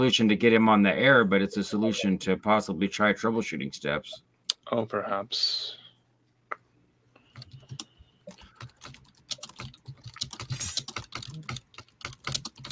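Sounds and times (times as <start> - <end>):
speech: 0.0 - 5.8
rapid typing on a mechanical keyboard: 7.4 - 12.6.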